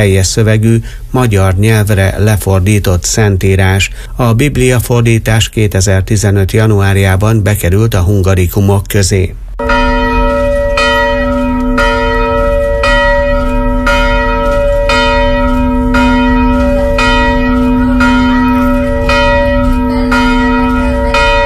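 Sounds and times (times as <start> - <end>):
speech: 0.0 - 9.8
church bells ringing with humming resonance: 9.6 - 21.4.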